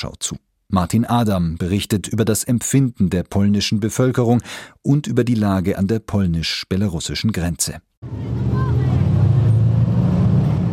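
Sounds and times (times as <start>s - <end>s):
speech: 0.0s - 8.7s
heavy tanks rumbling past at military parade: 8.0s - 10.7s.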